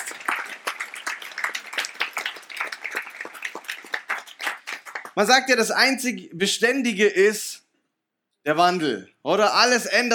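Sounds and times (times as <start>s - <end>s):
audience applause: 0.0s - 5.2s
speech: 5.2s - 7.5s, 8.4s - 10.1s.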